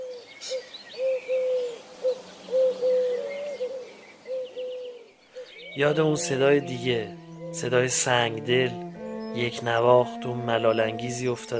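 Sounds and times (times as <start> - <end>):
male pigeon cooing to court a female: 0.0 - 5.5
faint higher bird chirps: 0.0 - 7.8
speech: 5.8 - 11.5.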